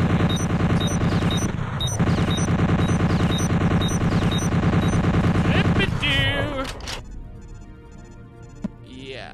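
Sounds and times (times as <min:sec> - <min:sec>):
turret gun firing bullets in a video game: 0:00.0 - 0:06.4.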